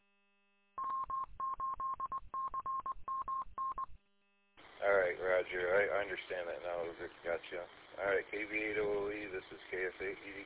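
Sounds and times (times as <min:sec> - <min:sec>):
touch-tone telephone keys beeping while dialing an international number: 0:00.8 - 0:03.9
speech: 0:05.4 - 0:10.4.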